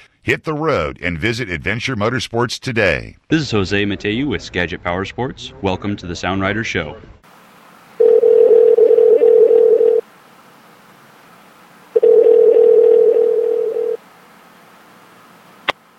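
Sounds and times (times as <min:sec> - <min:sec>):
speech: 0:00.2 - 0:07.2
telephone ringback tones heard over the line: 0:08.0 - 0:10.0, 0:12.0 - 0:14.0.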